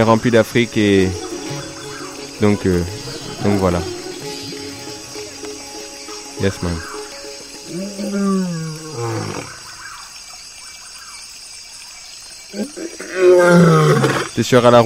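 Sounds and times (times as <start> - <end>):
speech: 0.0 - 1.2, 2.4 - 4.0, 6.4 - 6.9, 12.5 - 14.8
lion roaring: 7.7 - 9.7, 12.6 - 14.4.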